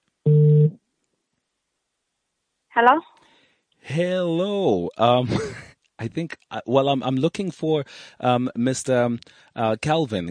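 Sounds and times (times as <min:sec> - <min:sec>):
phone ringing tone while a call is placed: 0:00.3 - 0:00.8
speech: 0:02.8 - 0:10.2
laughter: 0:05.2 - 0:05.7.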